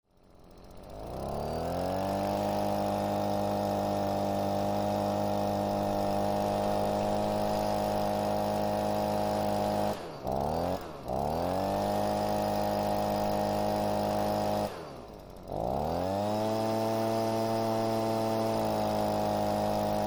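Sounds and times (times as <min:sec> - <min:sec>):
leaf blower: 0:00.1 - 0:20.0.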